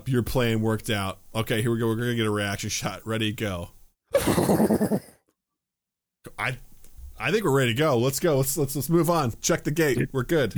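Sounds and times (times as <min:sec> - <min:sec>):
speech: 0:00.1 - 0:05.2, 0:06.4 - 0:10.5
person imitating a horse whinny: 0:04.2 - 0:05.2.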